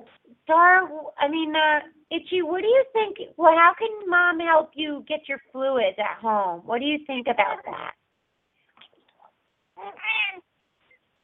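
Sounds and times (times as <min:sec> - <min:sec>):
speech: 0:00.1 - 0:08.0, 0:09.8 - 0:10.4
cat chirping: 0:09.8 - 0:10.5.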